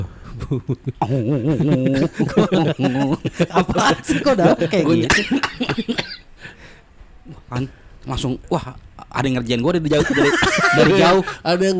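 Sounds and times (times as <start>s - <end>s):
speech: 0.0s - 6.6s, 7.3s - 11.7s
laughter: 0.4s - 6.2s, 9.9s - 11.7s
person coughing: 4.9s - 6.3s.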